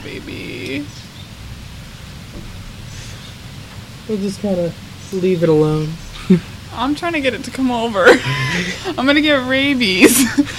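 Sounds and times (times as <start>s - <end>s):
speech: 0.0s - 1.0s, 4.1s - 10.5s
steady outdoor rain: 0.0s - 10.5s
laughter: 6.2s - 6.5s, 7.9s - 9.2s, 9.9s - 10.5s.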